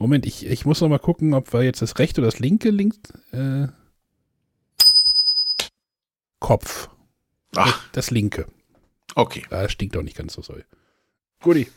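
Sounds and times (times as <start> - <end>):
speech: 0.0 - 3.8, 6.4 - 8.6, 9.2 - 10.8, 11.4 - 11.7
small bell ringing: 4.8 - 5.7.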